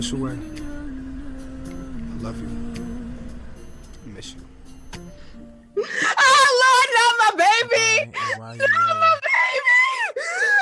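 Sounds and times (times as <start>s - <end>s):
speech: 0.0s - 0.6s, 2.2s - 3.0s, 4.1s - 4.5s, 7.6s - 9.0s
woman screaming and wailing in grief: 5.8s - 10.5s.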